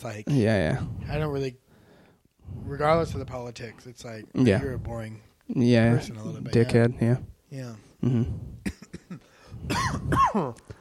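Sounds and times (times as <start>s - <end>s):
speech: 0.0s - 1.6s, 2.5s - 10.7s
person coughing: 8.0s - 10.6s
raspy rattling throat clearing: 8.0s - 10.6s.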